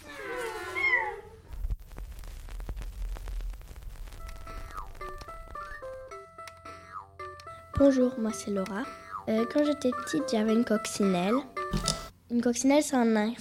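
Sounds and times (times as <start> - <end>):
kittens meowing: 0.0 - 1.3
speech: 7.8 - 13.4.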